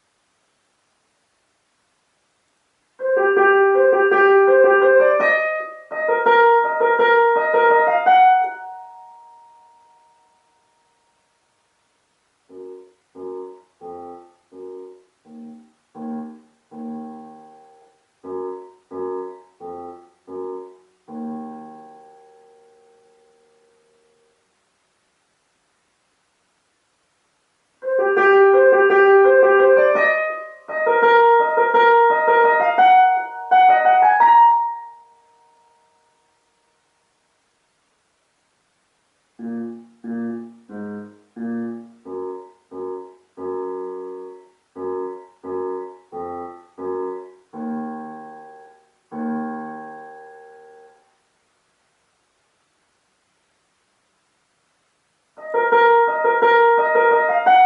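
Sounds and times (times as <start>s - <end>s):
electric piano: 3.0s - 11.0s, 12.5s - 24.3s, 27.8s - 36.3s, 39.4s - 51.1s, 55.4s - 57.6s.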